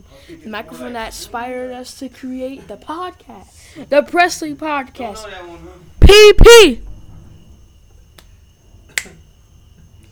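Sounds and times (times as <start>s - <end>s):
faint steady hum: 0.0s - 10.1s
speech: 0.3s - 6.9s
sharp crisp finger snap: 8.9s - 9.2s
soft faint hand clap: 9.0s - 9.2s.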